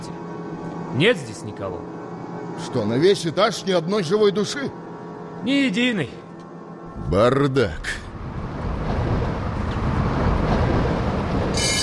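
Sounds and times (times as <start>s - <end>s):
speech: 1.0s - 2.0s, 2.6s - 4.8s, 5.4s - 6.2s, 7.0s - 8.0s
tram rolling along its rails: 7.8s - 11.8s
high metallic squeal: 11.5s - 11.8s.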